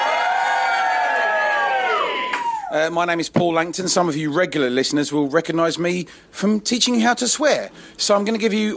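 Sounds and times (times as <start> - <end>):
live audience cheering, whooping and shouting: 0.0 - 2.9
speech: 2.7 - 8.7.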